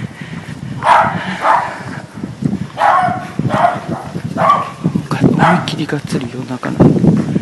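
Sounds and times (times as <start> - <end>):
dog barking: 0.8 - 1.9, 2.8 - 5.8
speech: 5.8 - 7.3.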